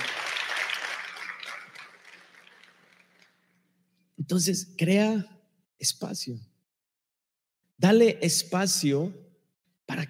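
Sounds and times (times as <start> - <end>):
crowd applause: 0.0 - 3.5
speech: 4.3 - 6.5, 7.8 - 9.2, 9.9 - 10.0.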